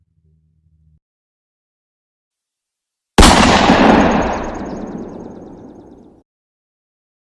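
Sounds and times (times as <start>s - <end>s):
loud gunshot with tail: 3.2s - 6.0s.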